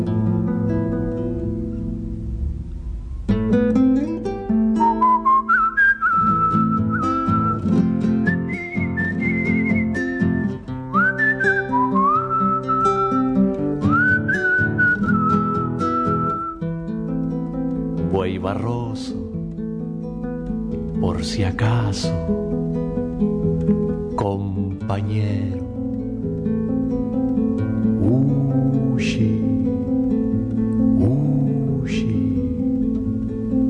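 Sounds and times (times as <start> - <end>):
musical backing: 0.0 - 33.6
person whistling a melody: 4.8 - 13.2, 13.8 - 16.7
speech: 21.4 - 22.3.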